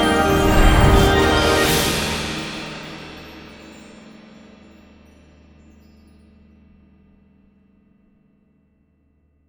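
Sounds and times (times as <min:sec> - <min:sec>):
freespin end game sound effect: 0:00.2 - 0:02.2.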